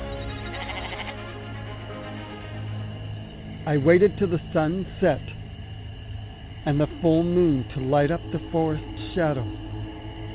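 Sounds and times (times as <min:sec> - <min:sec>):
mountain goat bleating in a wavering nasal cry: 0:00.4 - 0:01.2
speech: 0:03.7 - 0:05.4, 0:06.6 - 0:09.6.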